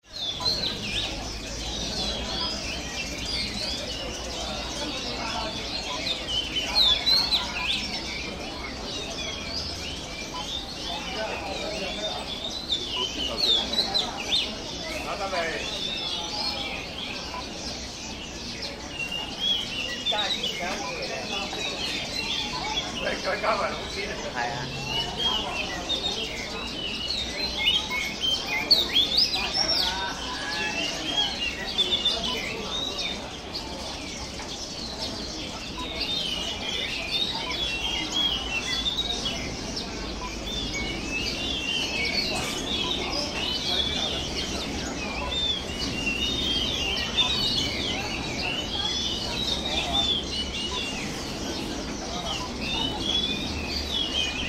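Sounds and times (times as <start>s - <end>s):
bird market ambience in Hong Kong: 0.0s - 54.4s.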